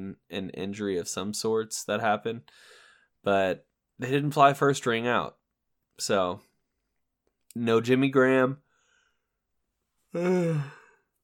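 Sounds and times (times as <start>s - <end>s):
speech: 0.1s - 5.4s, 6.0s - 6.5s, 7.6s - 8.6s, 10.1s - 10.8s
person yawning: 10.1s - 11.0s.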